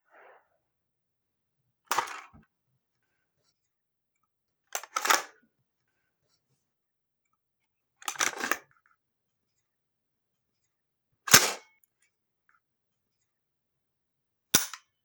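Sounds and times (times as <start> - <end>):
AR15 rifle charging handle pulled: 4.8 - 5.3
AR15 rifle magazine dropping: 4.8 - 5.3, 14.6 - 14.8
AR15 rifle magazine loading: 4.8 - 5.3, 8.0 - 8.6
AR15 rifle bolt dropping: 14.6 - 14.8.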